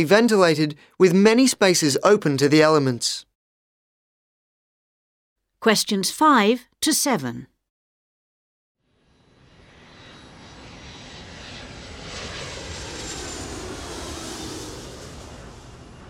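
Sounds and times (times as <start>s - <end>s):
speech: 0.0s - 3.3s, 5.6s - 7.5s
airplane passing overhead with rushing engine roar: 8.8s - 16.0s.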